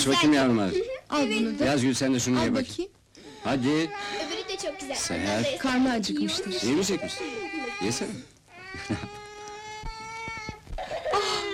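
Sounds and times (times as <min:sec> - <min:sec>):
speech: 0:00.0 - 0:09.2
baby crying in a high-pitched wail: 0:03.2 - 0:11.5.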